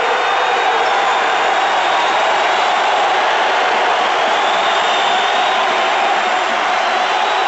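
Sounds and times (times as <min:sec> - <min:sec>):
basketball crowd jeering: 0:00.0 - 0:07.4.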